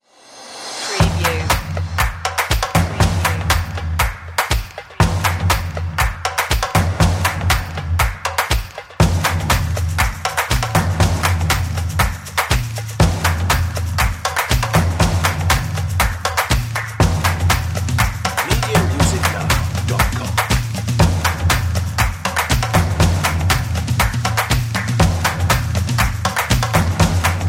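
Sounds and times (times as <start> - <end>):
energetic drums playing: 0.6 - 27.4.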